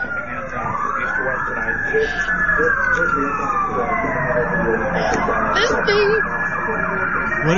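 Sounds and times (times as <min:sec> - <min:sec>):
constant rumble of traffic and engine noise: 0:00.0 - 0:07.5
police siren wailing during a car chase: 0:00.0 - 0:07.5
speech: 0:01.9 - 0:07.5.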